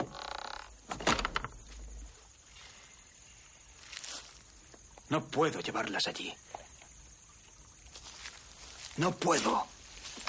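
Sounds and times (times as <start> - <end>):
house door creaking open: 0.0 - 1.7
speech: 5.1 - 6.6, 9.0 - 9.8
quieter shuffling footsteps: 7.9 - 10.2.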